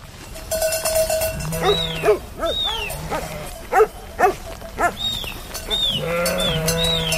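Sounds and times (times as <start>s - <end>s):
flock of sheep bleating in a large pen before milking: 1.3s - 5.0s, 5.7s - 7.1s.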